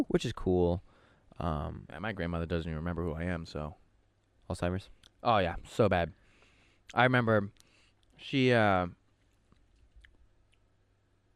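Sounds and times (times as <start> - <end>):
speech: 0.0 - 3.8, 4.5 - 6.2, 6.9 - 7.6, 8.2 - 9.0
person chewing beef jerky: 9.2 - 10.7.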